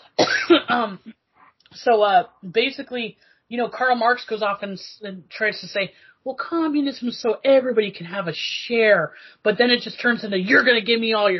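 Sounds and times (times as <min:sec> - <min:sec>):
loud harsh rasping coughing: 0:00.0 - 0:01.2, 0:10.4 - 0:10.8
speech: 0:00.5 - 0:11.3.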